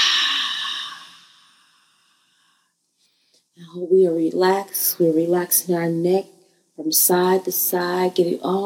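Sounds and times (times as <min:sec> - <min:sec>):
slow breath out during a breathing exercise: 0:00.0 - 0:03.5
speech: 0:03.7 - 0:08.6.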